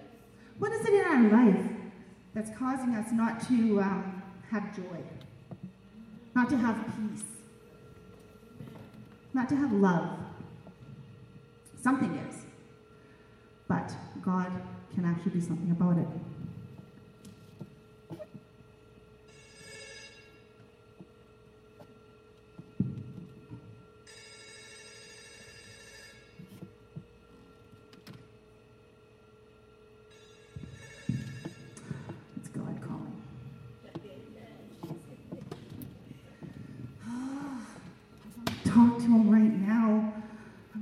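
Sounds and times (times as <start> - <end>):
low noise: 0.0 - 40.8
speech: 2.4 - 5.3, 6.4 - 7.4, 9.4 - 10.2, 11.8 - 12.4, 13.8 - 16.3
cell phone ringing: 19.3 - 20.6, 24.1 - 26.5, 30.1 - 32.0.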